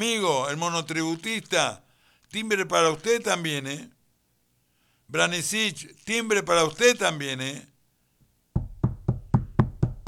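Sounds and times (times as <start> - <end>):
speech: 0.0 - 4.0, 5.1 - 7.7
firm dull knocking on a door: 8.6 - 10.0.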